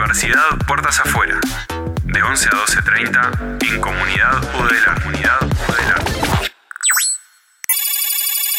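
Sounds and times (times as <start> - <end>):
speech: 0.2 - 6.0
electronic telephone ring for an incoming call: 7.7 - 8.5.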